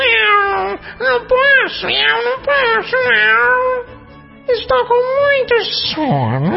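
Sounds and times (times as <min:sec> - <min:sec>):
cat meowing: 0:00.0 - 0:04.0
speech: 0:00.8 - 0:06.5.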